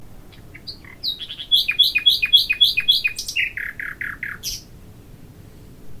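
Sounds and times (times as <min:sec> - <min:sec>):
nightingale song: 0:00.2 - 0:04.8.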